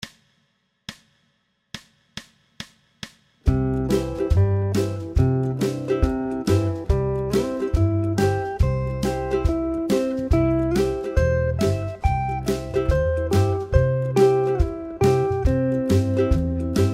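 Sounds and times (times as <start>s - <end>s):
ukulele pop music in C: 3.5s - 16.9s.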